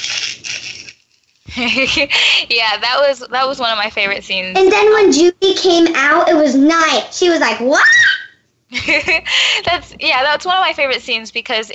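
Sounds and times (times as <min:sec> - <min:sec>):
voice imitating paper being slowly ripped off: 0:00.0 - 0:01.4
speech: 0:01.6 - 0:08.0, 0:08.8 - 0:11.7.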